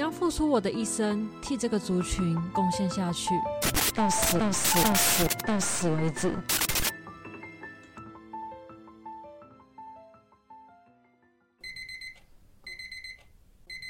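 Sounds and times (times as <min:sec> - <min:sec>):
speech: 0:00.3 - 0:06.7
phone alarm clock ringing in a small studio apartment: 0:11.6 - 0:13.8.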